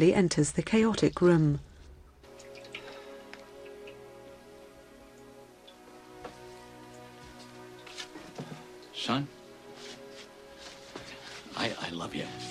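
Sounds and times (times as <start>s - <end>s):
speech: 0.0s - 1.7s, 9.1s - 9.4s
sharp water drips: 0.0s - 12.5s
water pouring from a water cooler into a glass in a home utility room: 2.3s - 4.3s.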